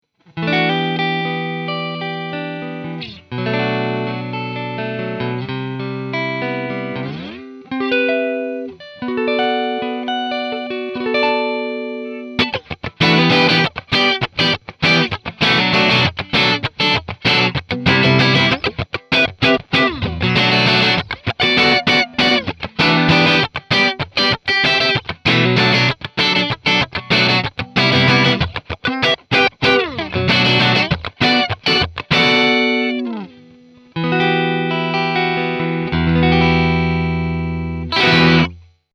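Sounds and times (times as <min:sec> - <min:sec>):
funk guitar: 0:00.3 - 0:38.8.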